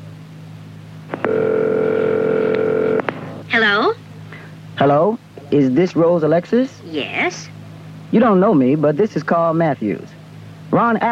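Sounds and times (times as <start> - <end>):
electronic ringing tone from a telephone handset earpiece: 1.1 - 3.1
sharp clicks on a phone line: 1.1 - 3.3
speech: 4.8 - 7.5, 8.1 - 11.1.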